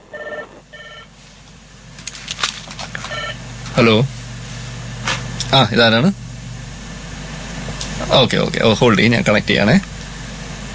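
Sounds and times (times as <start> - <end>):
incoming telephone call ringing with warbling tone: 0.0 - 1.1, 3.0 - 4.0
speech: 3.8 - 4.2, 5.5 - 6.2, 8.1 - 9.9.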